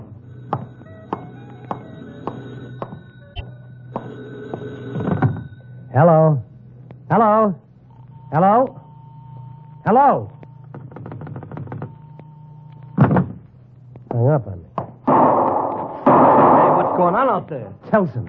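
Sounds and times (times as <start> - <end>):
telephone ringing in a phone booth: 0.0 - 13.0
steady low hum: 0.0 - 18.2
speech: 6.0 - 6.5, 7.1 - 7.6, 8.3 - 8.8, 9.9 - 10.4, 14.2 - 14.7, 17.0 - 18.2.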